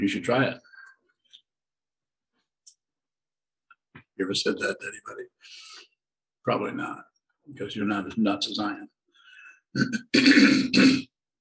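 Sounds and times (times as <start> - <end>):
speech: 0.0 - 0.7, 4.2 - 5.7, 6.4 - 9.0, 9.7 - 11.1
throat clearing: 9.8 - 11.2.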